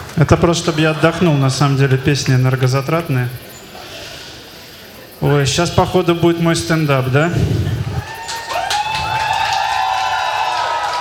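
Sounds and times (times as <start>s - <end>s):
scattered clapping: 0.0s - 2.7s, 8.0s - 10.9s
speech: 0.2s - 3.5s, 5.2s - 7.7s
live concert crowd cheering and whooping: 7.9s - 10.9s.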